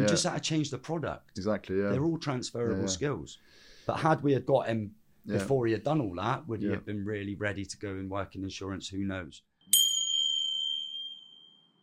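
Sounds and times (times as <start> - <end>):
speech: 0.0 - 9.8
bright bell ding signalling a break: 9.7 - 11.8.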